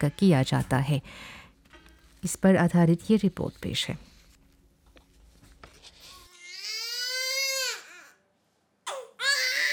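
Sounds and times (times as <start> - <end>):
speech: 0.0 - 1.4, 2.2 - 4.1
low hum of noise: 0.0 - 9.7
just-born newborn baby crying loudly: 6.3 - 8.2, 8.9 - 9.7.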